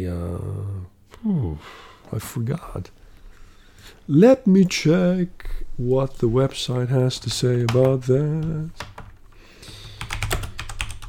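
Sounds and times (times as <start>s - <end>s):
speech: 0.0s - 3.0s, 3.8s - 8.9s
old mechanical keyboard typing: 7.6s - 11.0s.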